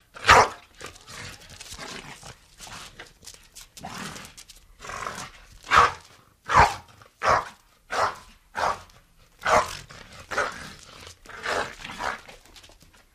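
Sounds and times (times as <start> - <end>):
pit bull barking: 0.2 - 0.6, 5.7 - 9.8.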